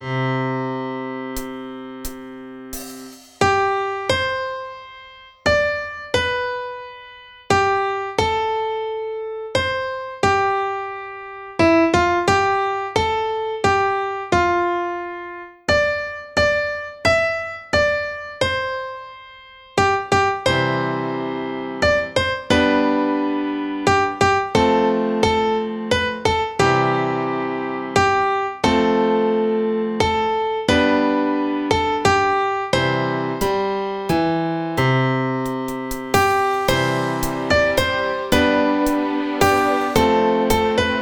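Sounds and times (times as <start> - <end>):
piano: 0.0 - 41.0
overhead cymbals: 1.4 - 4.1, 33.4 - 34.9, 35.5 - 41.0
strings: 33.4 - 41.0.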